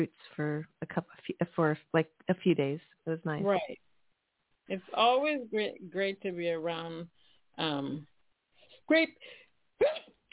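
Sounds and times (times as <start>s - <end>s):
speech: 0.0s - 3.9s, 4.7s - 8.1s, 8.9s - 10.2s
person sneezing: 9.8s - 10.3s.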